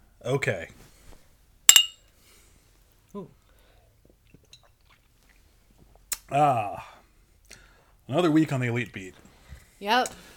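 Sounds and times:
speech: 0.2 - 0.8, 3.1 - 3.4, 6.3 - 6.9, 8.1 - 9.2, 9.8 - 10.3
two glasses clinking in a toast: 1.7 - 2.0.

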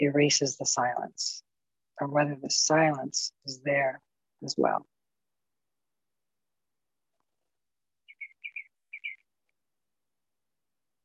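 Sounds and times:
speech: 0.0 - 1.4, 2.0 - 4.9
small bird chirping outdoors: 8.0 - 9.3.

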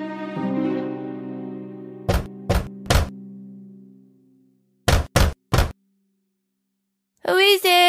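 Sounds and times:
sustained musical tone: 0.0 - 4.8
knocking on a wooden cottage door: 2.1 - 3.1, 4.9 - 5.8
speech: 7.2 - 7.8.

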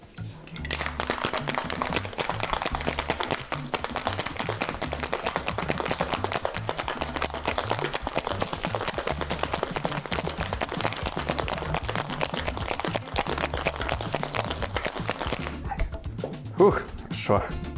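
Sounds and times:
cocktail shaker full of ice and cognac cocktail shaken hard: 0.4 - 15.9
speech: 16.6 - 17.6.

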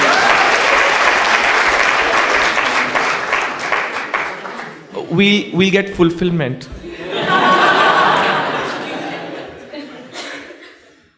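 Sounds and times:
room full of people applauding: 0.0 - 5.1, 7.7 - 9.5
speech: 5.1 - 6.8
laughter: 6.8 - 11.1.

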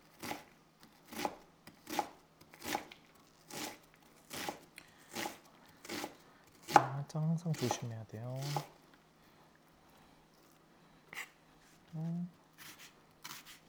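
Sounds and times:
knife chopping food fast: 0.1 - 8.7, 12.6 - 13.6
speech: 7.1 - 8.8.

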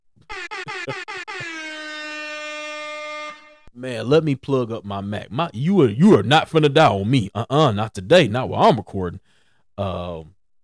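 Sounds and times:
loud air horn blasts: 0.3 - 3.7
speech: 0.8 - 1.1, 3.8 - 10.4.

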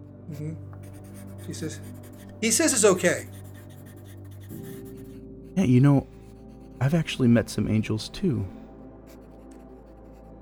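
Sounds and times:
speech: 0.3 - 3.4, 5.6 - 6.2, 6.8 - 8.6
pencil scribbling on paper as a girl draws angels: 0.7 - 10.4.

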